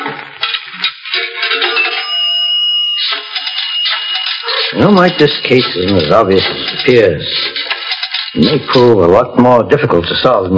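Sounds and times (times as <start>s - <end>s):
metallic rattle of coins and clicks in a pay phone: 0.0s - 9.0s
steady pay-phone ringing tone in a phone booth: 1.2s - 6.9s
speech: 4.8s - 7.7s, 8.4s - 10.5s.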